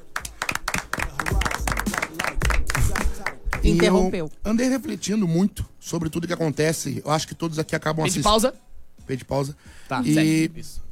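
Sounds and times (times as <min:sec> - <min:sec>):
applause from a small group: 0:00.0 - 0:04.0
speech: 0:03.7 - 0:10.8.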